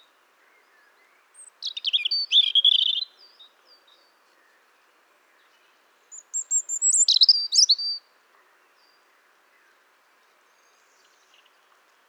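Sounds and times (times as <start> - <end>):
European robin Erithacus rubecula song: 1.4 - 3.4, 6.1 - 8.0.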